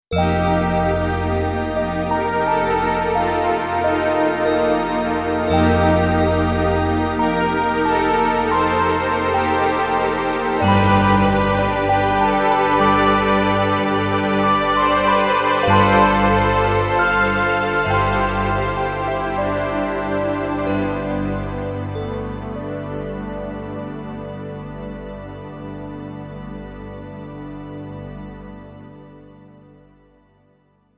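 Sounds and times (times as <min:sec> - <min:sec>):
bell pad: 0:00.1 - 0:23.8.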